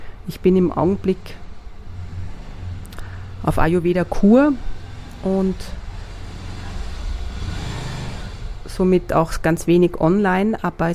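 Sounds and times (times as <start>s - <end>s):
speech: 0.2s - 1.4s, 3.5s - 5.8s, 8.8s - 10.9s
motorcycle engine starting and idling: 1.2s - 8.7s.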